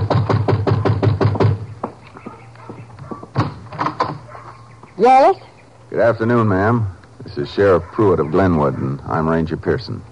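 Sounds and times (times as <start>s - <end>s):
knocking on a wooden door: 0.0s - 2.0s, 3.1s - 4.3s
speech: 5.0s - 10.1s.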